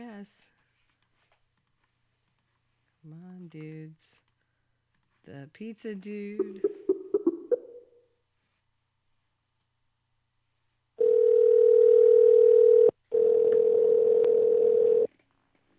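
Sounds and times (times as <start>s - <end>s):
speech: 0.2s - 0.5s, 3.0s - 4.3s, 5.2s - 6.7s
faint clicks: 0.5s - 5.2s
steady telephone tone on a call picked up by an automatic dialer: 11.0s - 15.1s.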